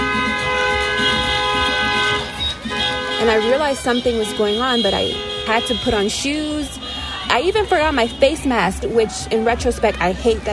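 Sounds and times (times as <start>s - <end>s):
car horns honking: 0.0s - 9.4s
speech: 3.2s - 6.8s, 7.4s - 10.5s.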